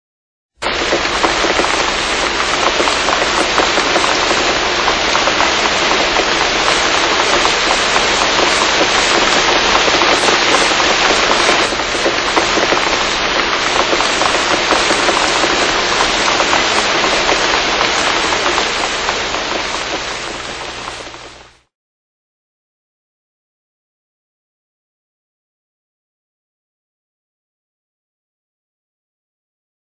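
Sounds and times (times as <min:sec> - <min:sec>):
rain: 0:00.6 - 0:21.7.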